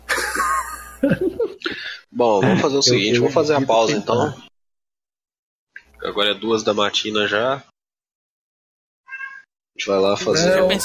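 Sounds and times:
laughter: 0.0 - 2.7
speech: 1.0 - 4.5, 6.0 - 7.7, 9.8 - 10.8
single short cat meow: 9.1 - 9.5.

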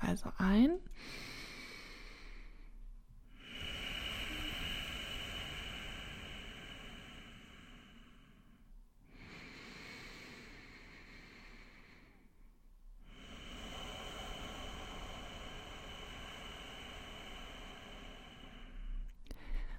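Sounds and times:
speech: 0.2 - 1.3
slow rushing ocean breath through the nose: 1.0 - 19.7.

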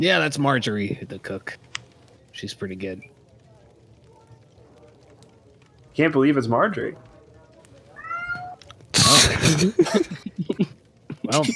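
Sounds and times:
speech: 0.0 - 1.7, 2.4 - 3.2, 6.0 - 7.1, 9.3 - 11.5
loud voices and commotion: 3.1 - 9.9
cat meowing: 8.0 - 8.6
laughter: 9.0 - 11.5.

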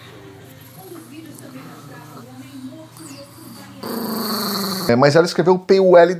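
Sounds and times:
small dog growling and whimpering: 0.5 - 5.0
speech: 2.6 - 4.0, 4.9 - 6.1.

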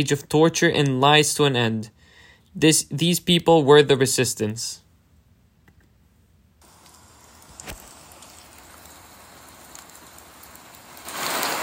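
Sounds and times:
speech: 0.0 - 2.0, 2.6 - 4.8
sharp drips: 6.6 - 11.6
steady rain hissing into a heavier downpour: 6.6 - 11.6.

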